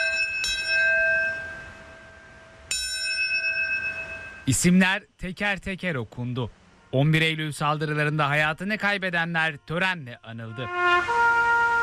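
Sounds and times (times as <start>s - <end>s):
church bells ringing at a memorial ceremony in New York: 0.0s - 4.6s
speech: 4.5s - 11.2s.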